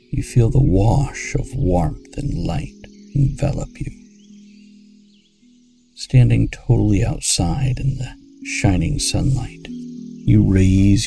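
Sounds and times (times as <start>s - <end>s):
person speaking calmly: 0.0s - 4.0s, 6.0s - 11.0s
chorus of crickets chirping outdoors on a warm sunny summer day: 0.0s - 11.0s
speech: 0.1s - 4.0s, 6.0s - 9.7s, 10.3s - 11.0s.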